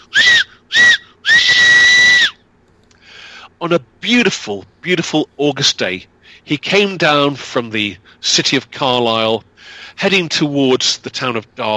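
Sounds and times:
steam locomotive whistle blasts: 0:00.0 - 0:02.3
speech: 0:03.6 - 0:11.7.

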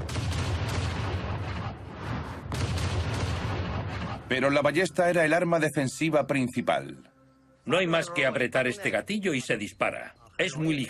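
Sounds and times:
cannons firing from behind the battlements of a defensive wall: 0:00.0 - 0:04.6
speech: 0:04.3 - 0:10.8.

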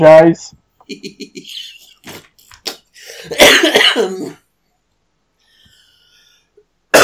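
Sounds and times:
speech: 0:00.0 - 0:02.3, 0:03.2 - 0:04.4
person coughing: 0:03.1 - 0:04.4.

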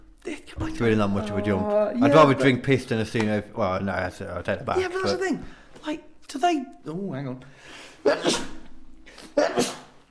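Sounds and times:
speech: 0:00.8 - 0:08.5
person sneezing into elbow: 0:08.0 - 0:10.0.

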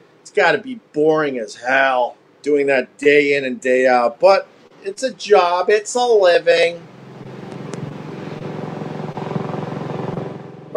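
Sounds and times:
speech: 0:00.3 - 0:06.9
helicopter flying past the window: 0:06.8 - 0:10.7.

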